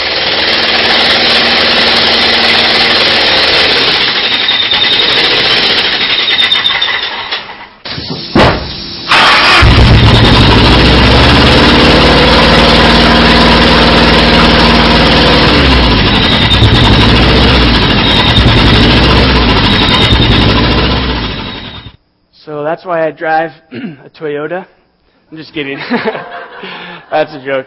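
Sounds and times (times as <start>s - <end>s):
engine idling roughly, misfiring on only half its cylinders: 0.0s - 7.2s, 9.1s - 22.0s
speech: 22.9s - 27.6s
laughter: 25.7s - 27.2s.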